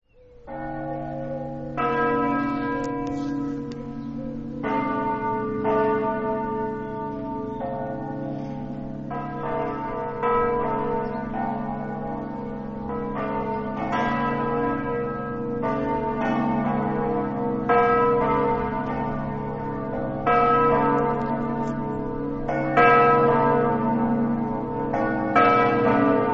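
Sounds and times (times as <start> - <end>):
bells in Mortegliano: 0.1 - 26.3.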